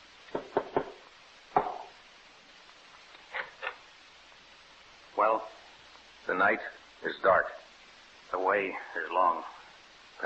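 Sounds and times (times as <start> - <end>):
knocking on a door: 0.3 - 1.9
speech: 5.2 - 5.6, 6.3 - 7.6, 8.3 - 9.6.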